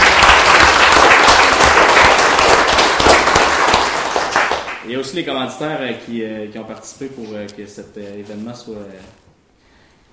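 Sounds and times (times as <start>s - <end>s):
sizable crowd applauding: 0.0s - 4.8s
speech: 4.9s - 9.3s.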